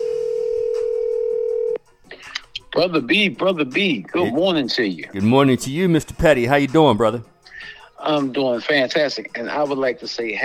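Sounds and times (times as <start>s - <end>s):
steady telephone tone: 0.0s - 1.8s
speech: 2.8s - 10.4s.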